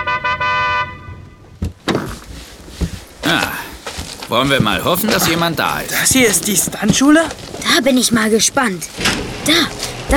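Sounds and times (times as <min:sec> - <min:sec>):
car horn honking in a Hollywood side street: 0:00.0 - 0:01.6
clunking noises: 0:01.3 - 0:10.1
speech: 0:03.3 - 0:03.6, 0:04.3 - 0:10.1.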